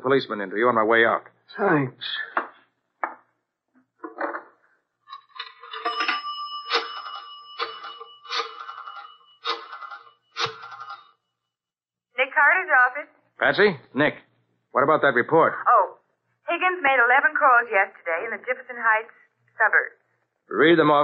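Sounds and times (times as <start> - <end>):
speech: 0.0 - 2.4, 13.4 - 15.7, 16.6 - 21.0
old-fashioned telephone bell ringing: 5.4 - 11.3.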